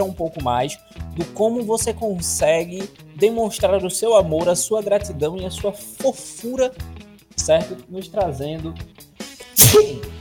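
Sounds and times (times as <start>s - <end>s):
speech: 0.0s - 9.1s, 9.7s - 10.1s
loud sneeze caused by an allergy: 9.6s - 10.1s.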